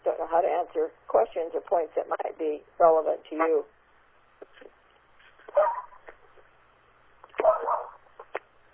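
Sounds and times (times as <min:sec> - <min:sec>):
speech: 0:00.4 - 0:03.8
pet dog barking: 0:05.5 - 0:06.0, 0:07.3 - 0:08.1.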